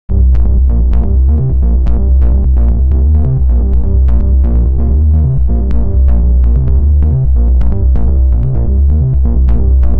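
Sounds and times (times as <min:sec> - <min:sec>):
deep groovy analog bassline: 0:00.0 - 0:09.9.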